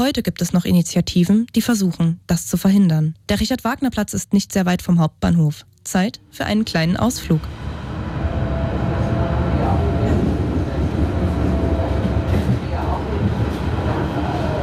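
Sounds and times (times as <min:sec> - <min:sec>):
speech: 0:00.0 - 0:07.7
S-Bahn commuter train rumbling in motion heard from inside the carriage: 0:06.3 - 0:14.6.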